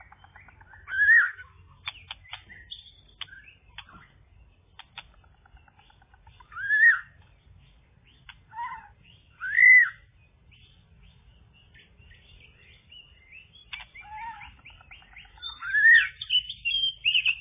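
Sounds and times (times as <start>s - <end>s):
Java sparrow song: 0.0s - 17.3s
dry clicks and faint ticking: 1.8s - 4.0s, 4.7s - 6.4s.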